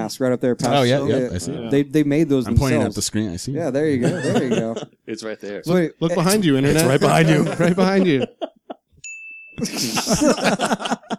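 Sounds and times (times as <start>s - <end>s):
loud lively voices and commotion: 0.0s - 8.7s
speech: 0.1s - 8.5s, 9.6s - 11.1s
laughter: 4.0s - 5.1s, 6.6s - 8.9s, 9.6s - 11.1s
shop door bell ding: 9.0s - 9.7s.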